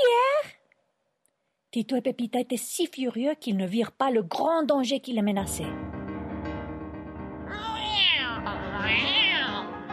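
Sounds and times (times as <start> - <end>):
speech: 1.7 - 6.0
cat meowing: 7.5 - 9.7.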